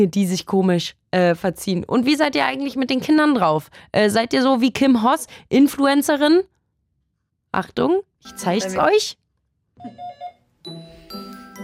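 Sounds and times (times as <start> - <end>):
speech: 0.0 - 6.5, 7.5 - 9.2, 9.8 - 11.2
doorbell chiming a melodic phrase and two-note ding-dong: 9.8 - 11.6.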